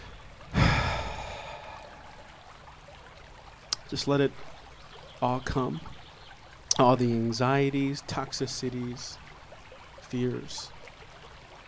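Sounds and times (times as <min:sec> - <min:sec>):
deep breathy exhale during a church service: 0:00.0 - 0:02.4
speech: 0:03.9 - 0:04.6, 0:05.2 - 0:06.0, 0:06.8 - 0:09.2, 0:10.1 - 0:10.8.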